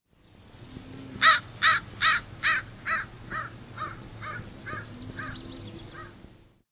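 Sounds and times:
American crow cawing: 1.2 - 5.4.

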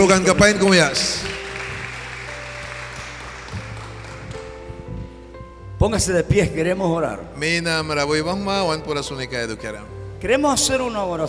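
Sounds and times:
speech: 0.0 - 1.3, 5.8 - 11.2
audience applauding: 0.6 - 4.7.

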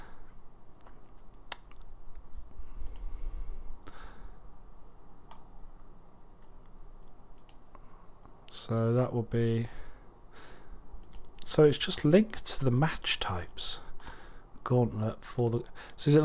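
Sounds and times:
low hum: 0.0 - 16.2
quiet sharp computer mouse clicks: 2.8 - 3.1, 6.4 - 7.8, 11.0 - 11.5
speech: 8.6 - 9.8, 11.6 - 13.9, 14.6 - 16.2.

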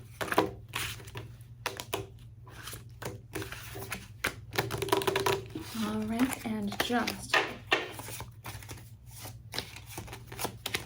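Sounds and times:
tarot deck being shuffled: 2.5 - 10.8
speech: 6.0 - 7.5.

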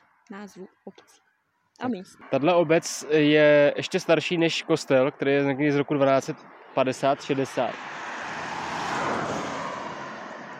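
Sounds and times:
speech: 0.3 - 8.0
car driving past through a village: 6.3 - 10.5.

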